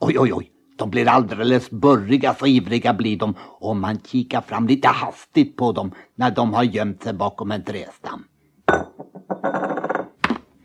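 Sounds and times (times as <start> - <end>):
speech: 0.1 - 9.7
drinking glass clinking: 8.7 - 10.2
drinking glass sliding backwards across a smooth table: 8.7 - 10.2.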